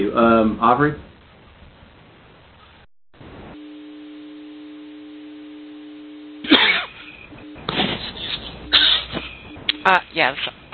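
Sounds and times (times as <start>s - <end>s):
speech: 0.1s - 1.1s, 9.8s - 10.7s
person coughing in harsh raspy bursts: 6.4s - 7.0s, 7.7s - 9.2s.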